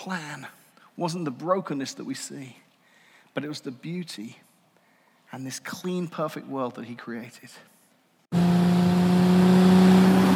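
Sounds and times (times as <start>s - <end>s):
speech: 0.0s - 2.7s, 3.4s - 4.5s, 5.3s - 7.7s
car engine revving in a TV ad: 8.3s - 10.3s.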